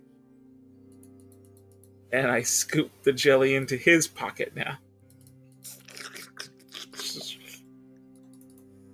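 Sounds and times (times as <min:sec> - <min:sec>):
speech: 0:02.1 - 0:04.8
voice imitating wet slurping noises: 0:05.6 - 0:07.6.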